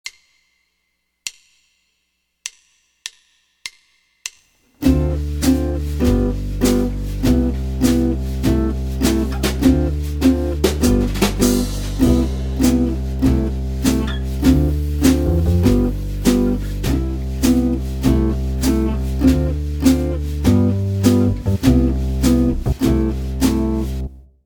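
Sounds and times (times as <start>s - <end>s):
jazz guitar playing a two five one progression in C major: 4.8s - 24.2s.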